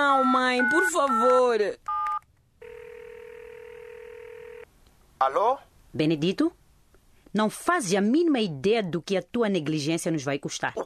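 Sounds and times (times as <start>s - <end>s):
speech: 0.0s - 1.9s, 5.2s - 6.6s, 7.3s - 10.8s
two-tone telephone keypad beep: 0.6s - 2.2s
steady continuous telephone dial tone: 2.0s - 4.6s.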